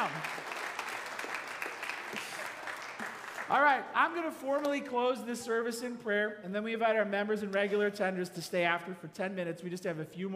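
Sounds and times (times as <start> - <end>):
audience applauding: 0.0 - 3.8
speech: 3.5 - 10.3.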